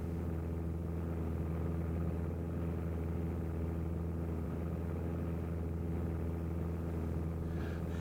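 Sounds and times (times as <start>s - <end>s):
aircraft engines droning in flight: 0.0s - 8.0s.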